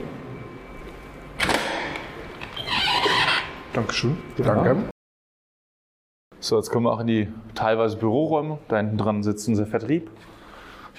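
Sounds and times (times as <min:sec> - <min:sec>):
office door opening: 0:01.4 - 0:03.6
speech: 0:03.8 - 0:04.9, 0:06.4 - 0:10.3.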